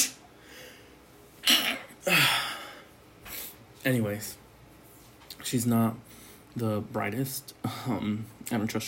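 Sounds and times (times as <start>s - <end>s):
person sneezing: 1.4s - 2.7s
speech: 3.8s - 4.4s, 5.5s - 8.8s.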